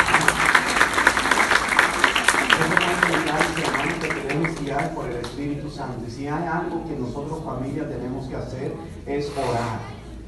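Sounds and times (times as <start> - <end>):
audience applause at a church gathering: 0.0 - 5.4
speech: 5.8 - 9.9.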